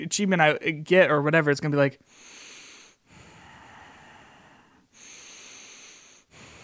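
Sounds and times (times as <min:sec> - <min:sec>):
speech: 0:00.0 - 0:02.4
person imitating heavy breathing into a microphone: 0:02.1 - 0:06.6.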